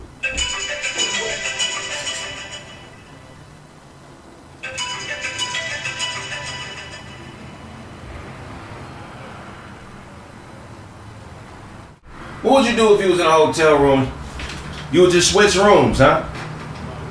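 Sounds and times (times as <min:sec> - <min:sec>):
phone ringtone: 0:00.2 - 0:03.6, 0:04.6 - 0:08.2
speech: 0:12.6 - 0:14.2, 0:14.9 - 0:16.3.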